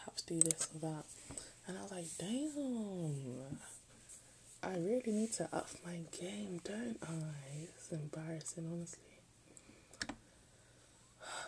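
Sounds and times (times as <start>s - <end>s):
speech: 0.1s - 3.8s, 4.6s - 9.1s
computer mouse double-click while browsing: 0.4s - 0.7s.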